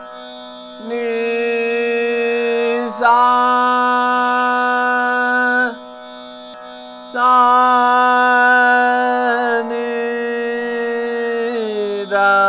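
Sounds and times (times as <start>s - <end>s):
ascending and descending raga scale: 0.8s - 12.3s.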